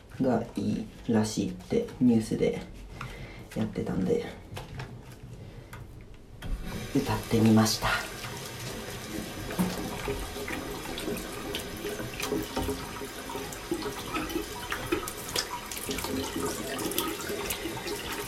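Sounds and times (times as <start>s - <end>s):
speech: 0.2s - 2.8s, 3.6s - 4.4s, 6.9s - 8.0s
tap water running into a sink: 6.4s - 18.2s.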